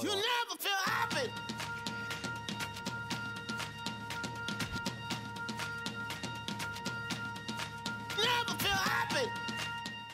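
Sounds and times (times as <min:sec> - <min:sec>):
sung vocal phrases: 0:00.0 - 0:01.4, 0:08.2 - 0:09.5
electro pop single with pulsing beat and synth chords: 0:00.0 - 0:10.1.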